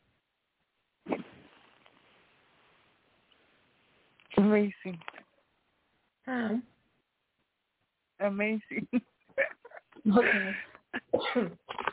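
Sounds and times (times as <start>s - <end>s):
speech: 4.4s - 5.2s, 6.3s - 6.7s, 8.2s - 11.7s
person clearing throat: 11.0s - 11.9s.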